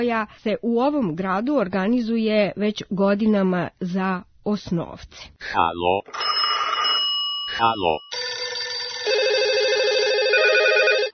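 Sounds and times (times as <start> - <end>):
speech: 0.0 - 6.8, 7.6 - 8.2
telephone ringing as a phone call connects: 6.1 - 11.1.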